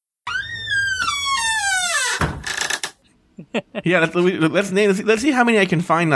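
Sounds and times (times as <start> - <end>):
squeaky door creak sound effect: 0.2 - 3.0
speech: 3.6 - 6.1.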